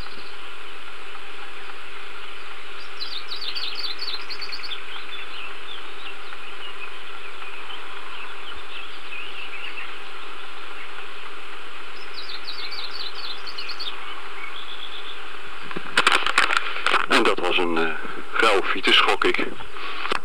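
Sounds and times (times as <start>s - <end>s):
bird calls in thin high rattling chirps: 0.0s - 15.9s
steady droning hum: 0.0s - 20.2s
speech: 17.6s - 20.0s.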